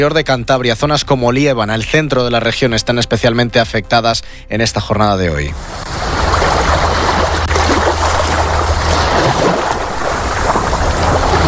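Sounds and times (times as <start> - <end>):
speech: 0.0 - 6.0
low rumble: 5.5 - 11.4
sea waves washing onto a beach: 5.6 - 11.4
wind buffeting the microphone: 5.6 - 11.4.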